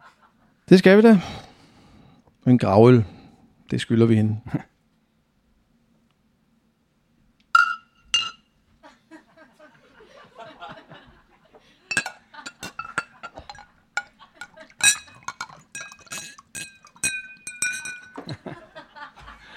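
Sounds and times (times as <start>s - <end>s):
speech: 0.7s - 1.4s, 2.4s - 4.7s
beer glasses clinking in a toast at a funeral gathering: 7.6s - 8.5s, 11.9s - 18.4s
laughter: 8.8s - 13.4s, 14.0s - 14.8s, 18.2s - 19.5s.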